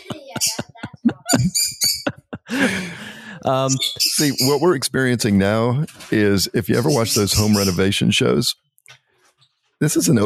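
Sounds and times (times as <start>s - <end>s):
laughter: 0.0s - 8.2s
lovebird chirping with high-pitched calls and a raspy squawk: 1.3s - 2.2s, 3.5s - 4.7s, 6.7s - 7.8s
speech: 3.5s - 8.6s, 9.8s - 10.2s.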